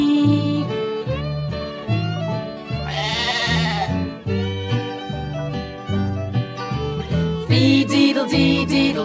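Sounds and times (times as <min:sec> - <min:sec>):
bouncy steady musical accompaniment: 0:00.0 - 0:09.0
sheep bleating: 0:02.7 - 0:04.2.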